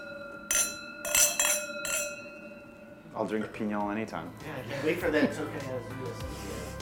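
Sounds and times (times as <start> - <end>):
wine glasses clinking in a toast at a restaurant: 0.0 - 3.6
speech: 3.2 - 6.7.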